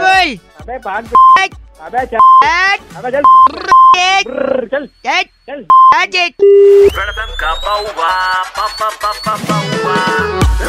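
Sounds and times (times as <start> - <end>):
speech: 0.3 - 10.6
short electronic beeps through a phone line: 1.2 - 1.4, 2.2 - 2.5, 3.2 - 4.0, 5.7 - 7.0.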